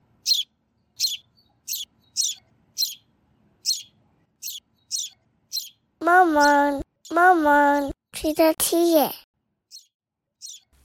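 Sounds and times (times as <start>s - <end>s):
baby sparrow chirping among leaves: 0.2s - 7.4s, 9.6s - 10.8s
speech: 6.0s - 9.2s.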